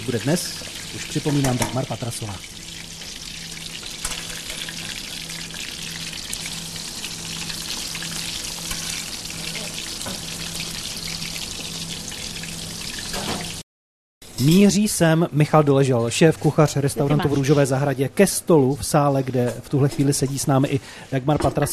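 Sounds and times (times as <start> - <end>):
speech: 0.0 - 2.6, 14.4 - 21.7
breaded cordon bleu schnitzel sizzling in a hot pan: 0.0 - 13.6.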